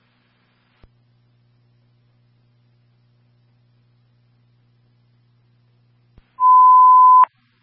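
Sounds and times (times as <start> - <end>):
faint low hum: 0.0 - 7.6
radio dispatch signal tone for a fire alarm: 6.4 - 7.3.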